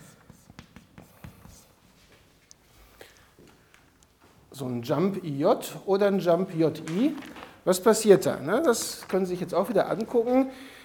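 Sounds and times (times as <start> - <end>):
scratchy strokes of handwriting: 0.0 - 2.3
speech: 4.6 - 10.8.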